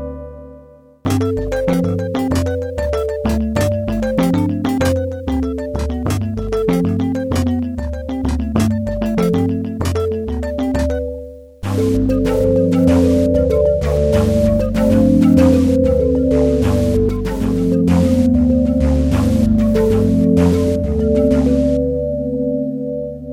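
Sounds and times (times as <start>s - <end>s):
Kawai K1 synthesizer hybrid tone decaying: 1.1s - 23.2s.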